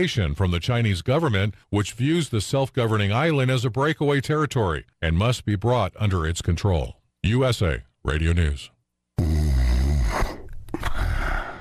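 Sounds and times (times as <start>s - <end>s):
speech: 0.0s - 9.5s
man snoring while asleep: 9.2s - 11.5s.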